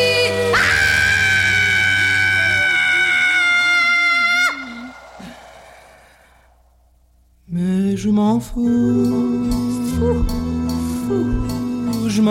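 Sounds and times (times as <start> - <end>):
loud high-pitched human scream: 0.0 - 6.3
speech: 8.0 - 12.2.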